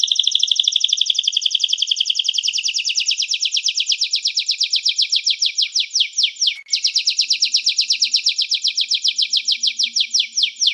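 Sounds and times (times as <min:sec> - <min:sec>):
canary singing: 0:00.0 - 0:10.7.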